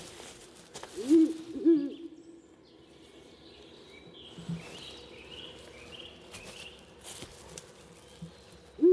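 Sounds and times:
Ural owl hooting: 1.0s - 2.2s.

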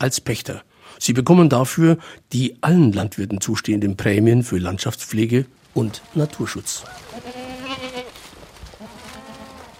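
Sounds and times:
speech: 0.0s - 7.9s
outdoor noise: 0.0s - 9.7s
herder's goats and sheep bleating while grazing for landscape conservation: 5.8s - 9.7s.

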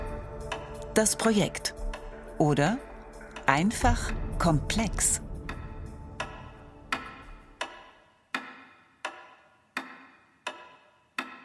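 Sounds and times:
wall clock pendulum ticking: 0.5s - 11.4s
speech: 1.0s - 1.8s, 2.4s - 2.9s, 3.5s - 5.2s
soft low rumble: 1.8s - 7.6s.

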